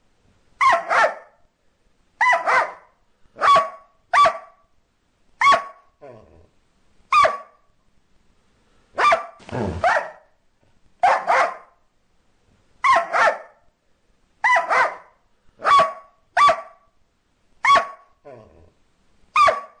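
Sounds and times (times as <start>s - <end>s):
dog barking: 0.6s - 1.4s, 2.2s - 4.6s, 5.4s - 5.9s, 7.1s - 7.6s, 9.0s - 10.3s, 11.0s - 11.8s, 12.8s - 13.7s, 14.4s - 16.9s, 17.6s - 18.2s, 19.4s - 19.7s.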